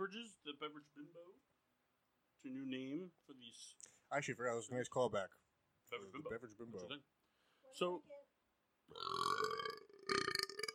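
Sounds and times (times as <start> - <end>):
speech: 0.0 - 1.6, 2.4 - 8.2, 8.9 - 9.7
person burping after sipping beer: 8.9 - 10.7.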